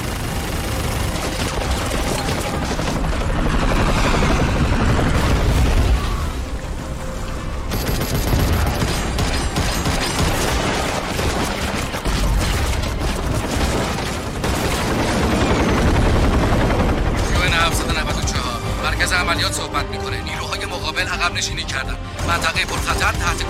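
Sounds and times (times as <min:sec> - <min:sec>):
bursts of rapid gunfire: 0:00.0 - 0:05.8, 0:07.7 - 0:18.4
air operations helicopter roaring: 0:00.0 - 0:10.3, 0:10.9 - 0:23.4.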